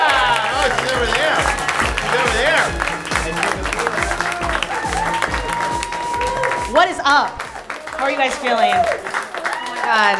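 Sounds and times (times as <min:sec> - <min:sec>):
thumping musical beat: 0:00.0 - 0:07.8
large crowd clapping: 0:00.0 - 0:10.1
speech: 0:07.1 - 0:07.4, 0:08.0 - 0:09.2, 0:09.9 - 0:10.1.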